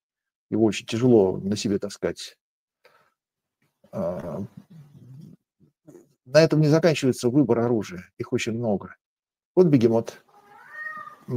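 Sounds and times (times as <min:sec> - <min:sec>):
speech: 0:00.5 - 0:02.4, 0:03.9 - 0:04.6, 0:06.3 - 0:09.0, 0:09.6 - 0:10.2
two cats growling and yowling at each other: 0:10.3 - 0:11.3.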